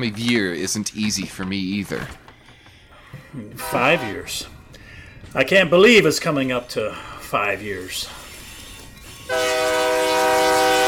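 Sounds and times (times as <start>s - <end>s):
speech: 0.0s - 2.2s, 3.3s - 4.6s, 5.3s - 8.2s
passing train rumble: 3.4s - 10.8s
train horn: 3.6s - 4.4s, 9.2s - 10.8s.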